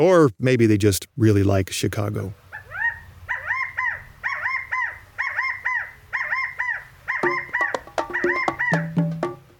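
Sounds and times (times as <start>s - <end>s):
speech: 0.0s - 2.4s
California quail calling in three-note phrases: 2.4s - 9.5s.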